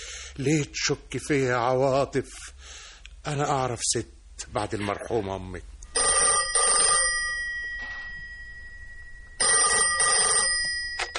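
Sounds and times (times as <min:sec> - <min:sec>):
speech: 0:00.4 - 0:05.7
home telephone bell ringing: 0:05.9 - 0:11.1.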